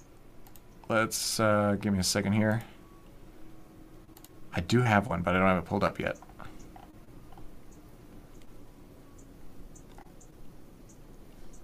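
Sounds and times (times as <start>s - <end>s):
hissy background: 0.0s - 11.6s
soft quick computer mouse clicks: 0.4s - 0.9s, 4.1s - 4.4s, 9.8s - 10.3s
speech: 0.9s - 2.7s, 4.5s - 6.3s.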